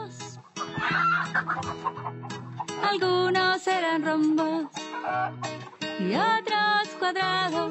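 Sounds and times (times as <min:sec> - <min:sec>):
hen clucking: 0:00.3 - 0:03.1, 0:04.6 - 0:06.1
hen squawking: 0:00.4 - 0:03.0, 0:04.7 - 0:05.9
speech: 0:03.0 - 0:07.6.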